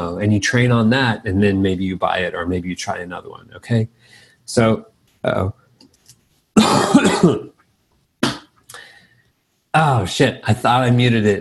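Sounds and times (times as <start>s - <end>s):
speech: 0.0s - 5.6s, 6.6s - 7.5s, 9.8s - 11.3s
person coughing and clearing throat: 6.6s - 7.6s, 8.2s - 8.6s.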